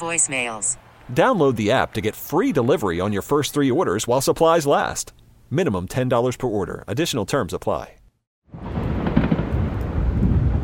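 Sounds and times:
speech: 0:00.0 - 0:08.7
distant fireworks booming after midnight: 0:08.5 - 0:10.6.

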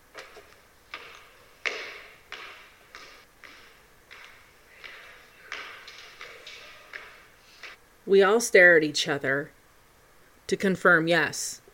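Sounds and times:
footsteps climbing stairs: 0:00.0 - 0:07.8
speech: 0:08.1 - 0:09.6, 0:10.5 - 0:11.6.

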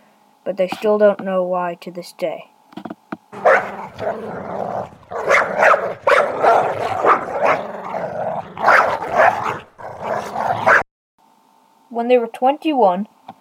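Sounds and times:
speech: 0:00.4 - 0:02.5, 0:04.0 - 0:05.0, 0:12.0 - 0:13.1
wolves barking and growling: 0:03.3 - 0:10.8.

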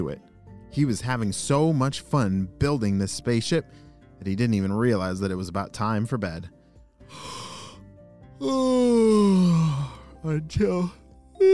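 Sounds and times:
speech: 0:00.0 - 0:07.4, 0:08.4 - 0:11.5
person yawning: 0:08.4 - 0:10.1, 0:11.4 - 0:11.5.

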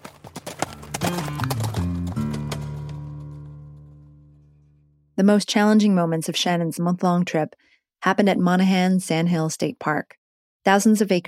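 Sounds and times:
hooves clopping as a horse is ridden off: 0:00.0 - 0:04.0
speech: 0:05.3 - 0:11.2.

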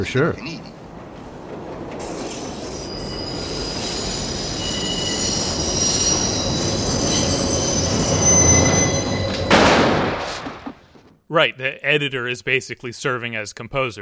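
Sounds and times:
speech: 0:00.0 - 0:00.7, 0:11.3 - 0:14.0
elevated subway train screeching on rails: 0:00.0 - 0:09.7
subway train clattering: 0:00.0 - 0:11.2.

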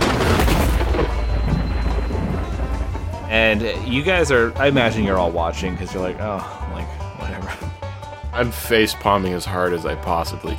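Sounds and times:
loud rumble of thunder with a sharp crack: 0:00.0 - 0:06.2
speech: 0:03.5 - 0:07.0, 0:08.4 - 0:10.5.

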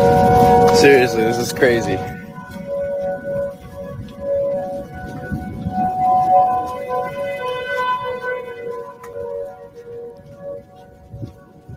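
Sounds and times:
low outdoor rumble: 0:00.0 - 0:07.6
tornado warning sirens wailing in a neighborhood: 0:00.0 - 0:11.7
speech: 0:00.8 - 0:02.2.

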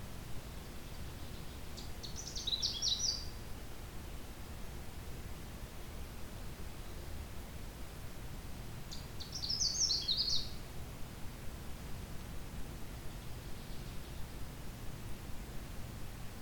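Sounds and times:
steady low-pitched background noise: 0:00.0 - 0:16.4
Canada warbler song on territory in a swamp: 0:00.4 - 0:04.2, 0:08.8 - 0:10.7, 0:13.0 - 0:14.5.

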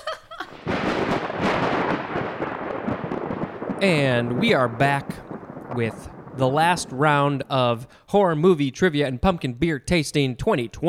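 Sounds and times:
loud crash of thunder rolling into a rumbling roar: 0:00.5 - 0:08.4
speech: 0:03.8 - 0:10.8.

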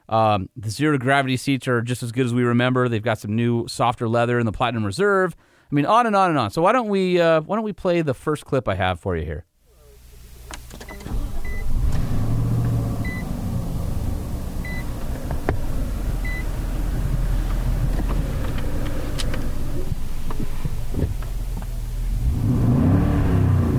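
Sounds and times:
speech: 0:00.1 - 0:09.5
people getting into a car: 0:10.4 - 0:22.2
car engine cranking to life and revving: 0:10.6 - 0:23.7.

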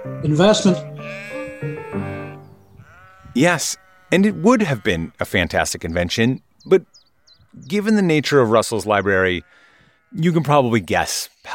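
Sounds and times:
speech: 0:00.1 - 0:01.8, 0:03.4 - 0:07.0, 0:07.6 - 0:11.5
sheep bleating: 0:00.8 - 0:05.6, 0:09.1 - 0:10.4.

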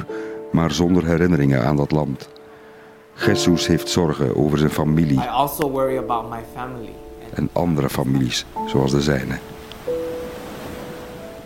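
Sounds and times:
speech: 0:00.1 - 0:02.4, 0:03.2 - 0:10.0
foaming ocean waves washing onto the shore beside a wall in the water: 0:07.0 - 0:11.4.

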